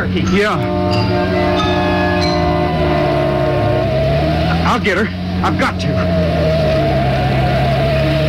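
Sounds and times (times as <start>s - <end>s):
car engine accelerating: 0.0s - 8.2s
speech: 0.1s - 1.9s, 4.6s - 6.7s.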